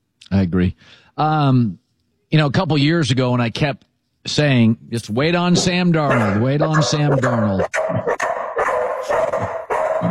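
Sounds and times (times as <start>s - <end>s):
speech: 0.3s - 8.2s
dog barking at home as someone comes to the door: 5.6s - 10.0s.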